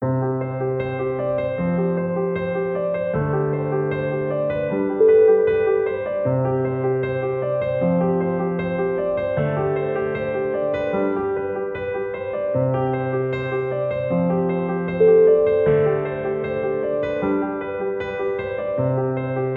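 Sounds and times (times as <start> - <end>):
simple inspirational piano music: 0.0 - 19.5.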